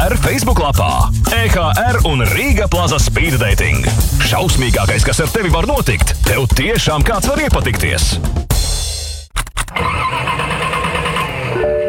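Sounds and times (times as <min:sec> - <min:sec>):
speech: 0:00.3 - 0:08.4
old car engine cranking, starting and idling roughly: 0:09.3 - 0:11.8.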